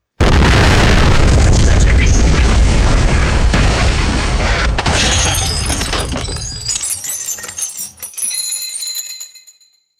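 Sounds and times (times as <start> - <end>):
vintage explosion: 0.2 - 7.0
glass and metal debris from explosion: 4.8 - 9.7.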